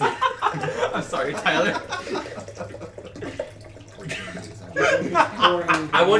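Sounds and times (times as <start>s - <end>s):
laughter: 0.0s - 6.1s
water gurgling as it is poured: 0.0s - 6.1s
speech: 0.6s - 2.8s, 5.2s - 6.1s.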